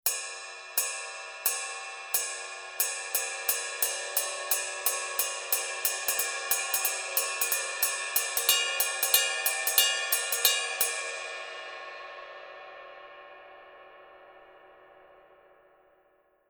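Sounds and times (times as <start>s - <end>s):
forged bronze alloy ride cymbal playing inner pattern: 0.1s - 11.7s.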